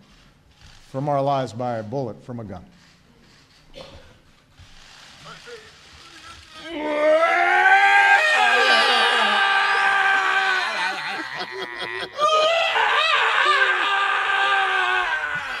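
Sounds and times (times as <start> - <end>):
speech: 0.9 - 2.8
man crying in long wavering sobs during a speech: 6.6 - 15.5
laughter: 8.2 - 15.5.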